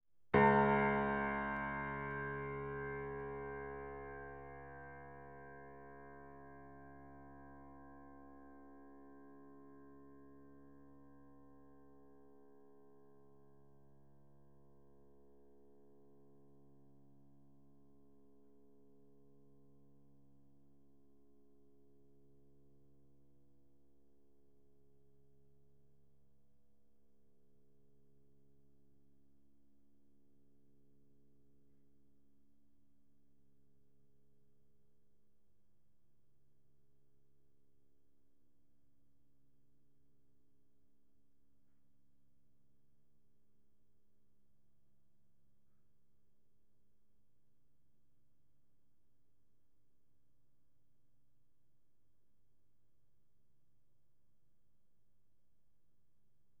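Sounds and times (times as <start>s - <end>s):
piano note D flat 2 played fortissimo: 0.4s - 5.8s.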